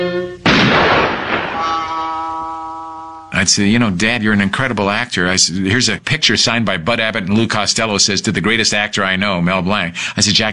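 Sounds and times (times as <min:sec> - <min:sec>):
single loud gunshot from a gun: 0:00.4 - 0:02.3
speech: 0:03.4 - 0:10.5.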